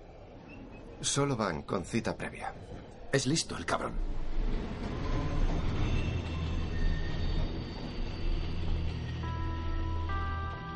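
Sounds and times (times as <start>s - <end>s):
subway train rumbling: 0.0s - 10.7s
speech: 1.0s - 4.5s
subway train wheels squealing metallically: 4.9s - 9.6s.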